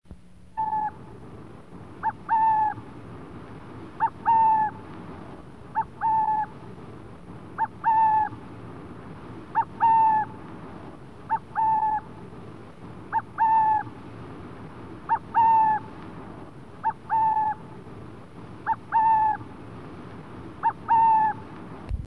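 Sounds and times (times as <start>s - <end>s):
Burrowing Owl calls in summer: 0.5s - 1.2s, 2.0s - 3.0s, 3.8s - 6.8s, 7.4s - 8.6s, 9.4s - 12.4s, 13.0s - 17.9s, 18.5s - 21.6s.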